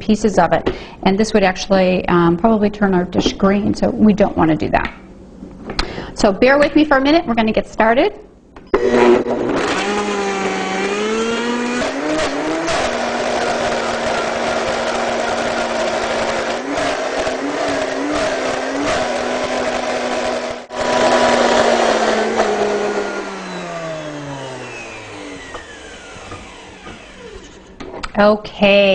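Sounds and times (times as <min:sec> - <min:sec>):
speech: 0:00.1 - 0:05.0, 0:06.2 - 0:08.3, 0:28.2 - 0:28.9
blender puréeing ingredients into a creamy mix: 0:08.7 - 0:27.8.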